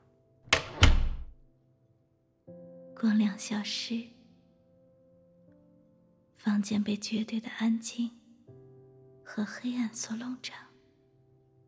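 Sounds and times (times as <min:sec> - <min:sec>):
door being shut: 0:00.5 - 0:01.4
speech: 0:03.0 - 0:04.2, 0:06.4 - 0:08.2, 0:09.3 - 0:10.7.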